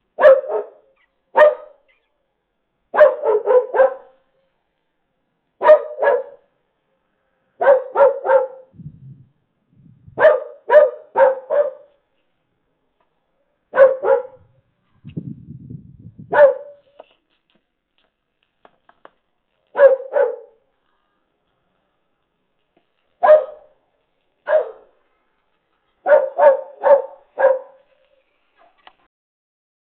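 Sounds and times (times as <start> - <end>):
pets barking: 0.2 - 1.8, 2.9 - 4.2, 5.6 - 6.4, 7.6 - 8.7, 10.2 - 11.9, 13.7 - 14.5, 16.3 - 16.8, 19.8 - 20.6, 23.2 - 23.7, 24.4 - 24.9, 26.0 - 27.8.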